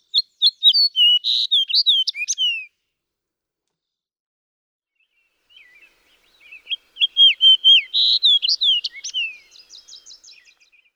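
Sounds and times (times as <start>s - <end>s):
fox sparrow: 0.0s - 2.7s, 5.6s - 10.9s.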